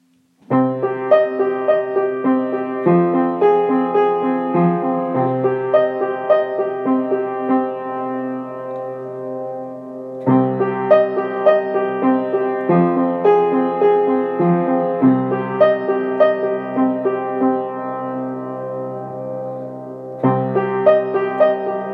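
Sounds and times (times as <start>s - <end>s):
piano: 0.0s - 21.9s.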